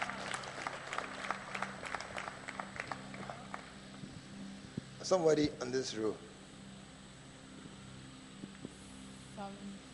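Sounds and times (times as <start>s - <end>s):
audience clapping: 0.0s - 3.8s
speech: 5.1s - 6.3s.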